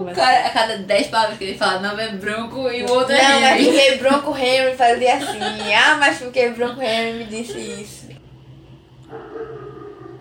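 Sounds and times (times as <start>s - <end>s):
speech: 0.0s - 8.0s
laughter: 0.0s - 8.2s
steady low hum: 0.0s - 10.1s
dog barking: 9.1s - 10.1s.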